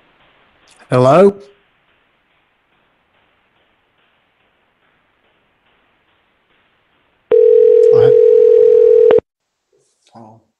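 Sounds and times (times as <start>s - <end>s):
speech: 0.7s - 1.5s
telephone ringing tone: 7.3s - 9.2s.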